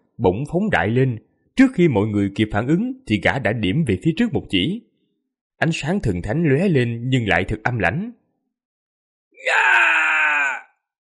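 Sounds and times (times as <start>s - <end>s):
speech: 0.2s - 4.9s, 5.6s - 8.2s, 9.4s - 9.9s
person screaming in agony as they are struck down: 9.4s - 10.8s.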